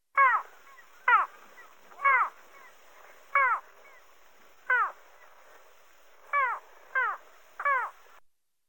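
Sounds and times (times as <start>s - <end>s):
little gull calling: 0.0s - 8.2s.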